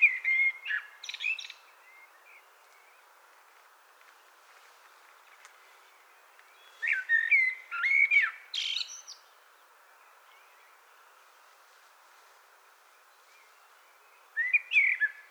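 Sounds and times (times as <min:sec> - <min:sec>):
common blackbird Turdus merula singing fluty warbled phrases with scratchy trills: 0:00.0 - 0:03.0, 0:05.8 - 0:09.4, 0:13.3 - 0:15.2.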